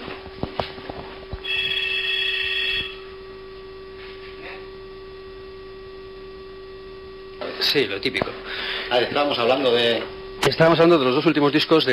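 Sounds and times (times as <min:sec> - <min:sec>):
telephone ringing with a high electronic trill: 0:01.4 - 0:03.1
speech: 0:07.6 - 0:11.9.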